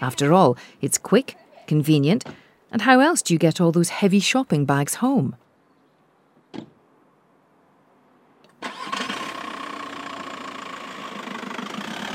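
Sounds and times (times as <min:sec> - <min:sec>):
speech: 0:00.0 - 0:05.4
car engine cranking and idling: 0:08.4 - 0:12.1.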